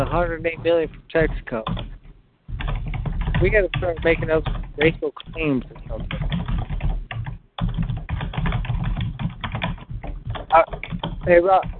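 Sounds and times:
speech: 0.0s - 1.9s, 3.4s - 6.4s, 10.5s - 11.7s
typing on a computer keyboard: 0.0s - 11.7s.

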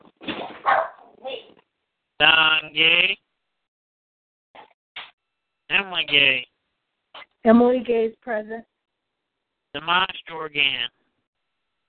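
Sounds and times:
dog barking: 0.6s - 1.2s
speech: 2.2s - 3.2s, 5.9s - 6.5s, 7.4s - 8.7s, 9.8s - 11.0s.

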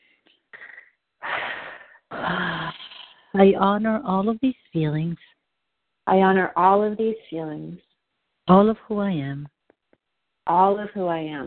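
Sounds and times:
deep breath: 0.6s - 3.3s
speech: 3.4s - 5.4s, 6.1s - 7.9s, 8.5s - 9.5s, 10.5s - 11.4s.

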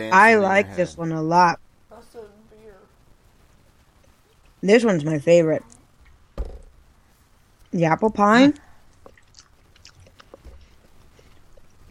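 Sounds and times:
speech: 0.0s - 1.6s, 4.6s - 5.7s, 7.7s - 8.6s
chewing jelly beans: 8.9s - 11.8s.

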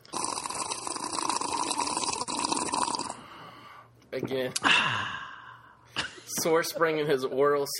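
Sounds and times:
person drinking water from a bottle: 0.0s - 3.4s
speech: 4.2s - 5.2s, 6.3s - 7.7s.

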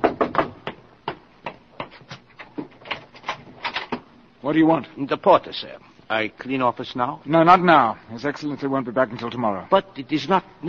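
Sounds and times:
knocking on a door: 0.0s - 1.6s
speech: 4.4s - 10.6s.

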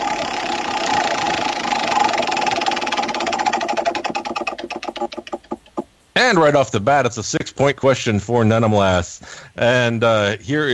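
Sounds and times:
prize wheel spinning with a whirring rattle during a quiz game: 0.0s - 5.9s
speech: 6.2s - 10.7s.

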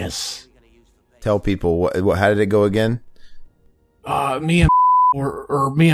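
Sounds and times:
speech: 0.0s - 0.4s, 1.2s - 3.1s, 4.0s - 5.9s
man speaking loudly: 0.0s - 3.0s, 4.1s - 5.9s
single-tone censor beep: 4.6s - 5.2s.

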